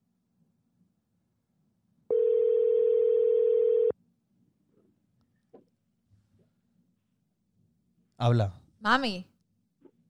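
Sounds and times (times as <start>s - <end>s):
ringback tone from an outgoing mobile phone call: 2.1s - 4.0s
speech: 8.2s - 9.3s.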